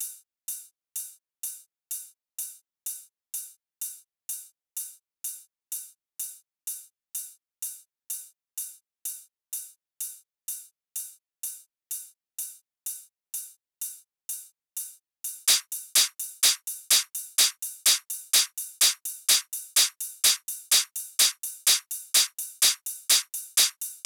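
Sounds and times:
drum loop: 15.5s - 24.0s.

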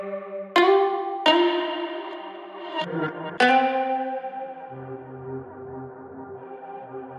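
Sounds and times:
melody loop in F minor: 0.6s - 4.3s.

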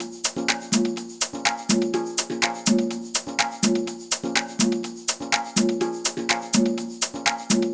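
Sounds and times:
deep vibes percussion top loop at 124 BPM: 0.0s - 7.7s.

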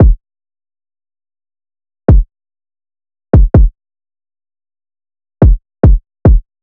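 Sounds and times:
dark drill kick drum loop: 0.0s - 0.2s, 2.1s - 2.3s, 3.4s - 3.7s, 5.4s - 6.5s.

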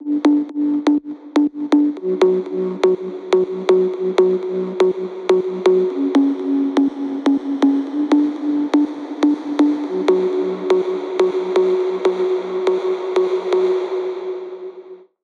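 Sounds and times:
house music bass at 122 bpm with reverb: 0.0s - 14.7s.

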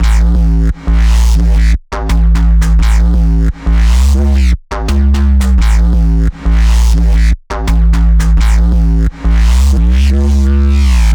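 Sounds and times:
bass loop in A: 0.0s - 11.1s.

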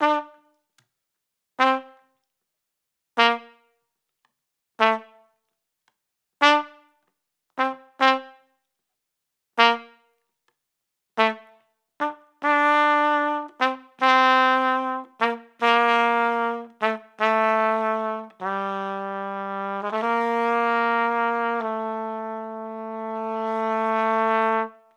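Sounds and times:
flugelhorn melody in G minor: 0.0s - 0.5s, 1.6s - 2.0s, 3.2s - 3.7s, 4.8s - 5.2s, 6.4s - 6.8s, 7.6s - 8.4s, 9.6s - 10.1s, 11.2s - 24.9s.

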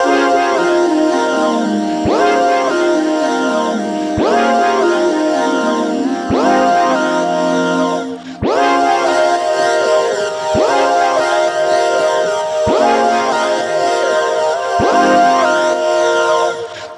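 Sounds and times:
melodic stack vocoder in D flat major: 0.0s - 16.9s.

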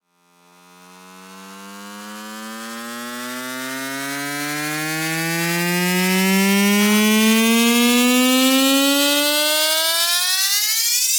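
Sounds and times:
riser sound effect in F minor at 150 BPM: 2.4s - 11.1s.

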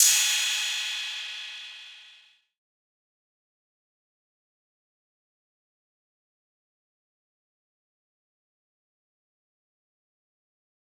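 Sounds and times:
cymbal: 0.0s - 2.2s.

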